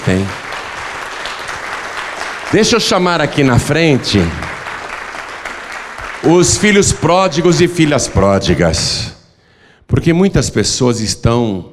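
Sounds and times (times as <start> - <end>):
crowd clapping: 0.0 - 8.3
speech: 0.1 - 0.4, 2.5 - 4.4, 6.2 - 9.1, 9.9 - 11.7.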